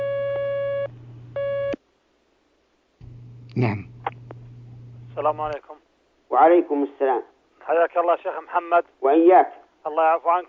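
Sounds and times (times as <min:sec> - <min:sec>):
telephone line tone signalling an incoming call: 0:00.0 - 0:01.8
low hum: 0:00.6 - 0:01.7, 0:03.0 - 0:05.6
speech: 0:03.6 - 0:03.9, 0:05.2 - 0:05.7, 0:06.3 - 0:10.4.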